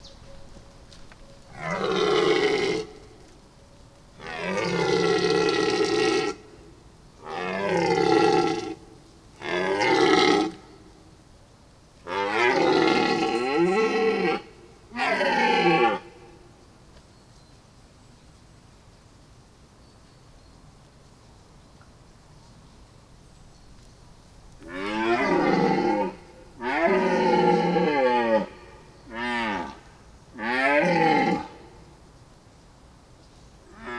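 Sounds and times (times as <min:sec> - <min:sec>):
Cervus elaphus hippelaphus male stag roaring during the rut: 0:01.5 - 0:03.1, 0:04.2 - 0:06.4, 0:07.2 - 0:08.8, 0:09.4 - 0:10.6, 0:12.1 - 0:16.2, 0:24.6 - 0:29.8, 0:30.4 - 0:31.6.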